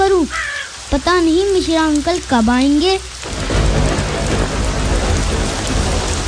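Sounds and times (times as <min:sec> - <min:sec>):
heavy rain pouring: 0:00.0 - 0:06.2
speech: 0:00.3 - 0:03.1
deep rumbling thunder: 0:01.4 - 0:06.2.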